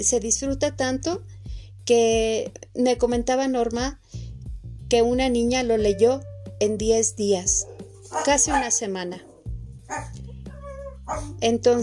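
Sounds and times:
speech: 0:00.0 - 0:04.1, 0:04.9 - 0:09.3, 0:09.9 - 0:10.2, 0:11.1 - 0:11.8
dogs barking: 0:07.5 - 0:11.4.

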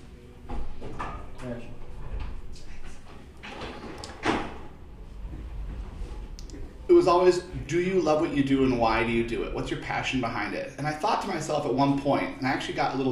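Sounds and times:
door being pulled shut: 0:00.5 - 0:05.7
speech: 0:07.0 - 0:13.1.

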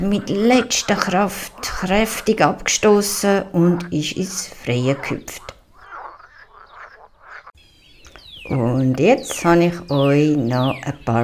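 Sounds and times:
speech: 0:00.0 - 0:05.5, 0:08.5 - 0:11.2
frog croaking in nasal bursts: 0:00.0 - 0:07.6
quieter outdoor chirping: 0:00.0 - 0:11.2.

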